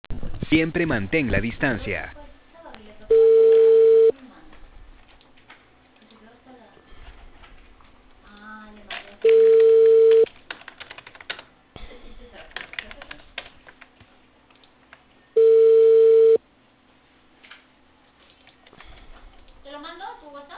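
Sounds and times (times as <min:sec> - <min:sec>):
noise: 0:00.1 - 0:20.5
speech: 0:00.5 - 0:02.2
telephone ringback tone on a call from Cali Peru: 0:03.1 - 0:04.1, 0:09.2 - 0:10.2, 0:15.4 - 0:16.4.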